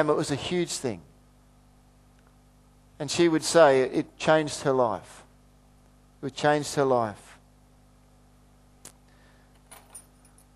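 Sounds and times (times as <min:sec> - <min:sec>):
speech: 0:00.0 - 0:01.1, 0:03.0 - 0:05.2, 0:06.2 - 0:07.3
low steady hum: 0:00.0 - 0:10.5
keys jangling: 0:09.6 - 0:10.5.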